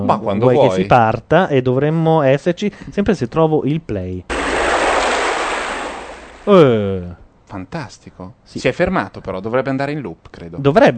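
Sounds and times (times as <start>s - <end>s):
speech: 0.0s - 4.4s, 6.4s - 10.9s
ocean waves like surf rolling in: 4.3s - 6.5s.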